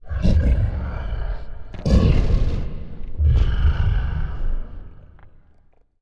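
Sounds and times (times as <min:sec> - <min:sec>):
giant monster breathing: 0:00.0 - 0:05.8.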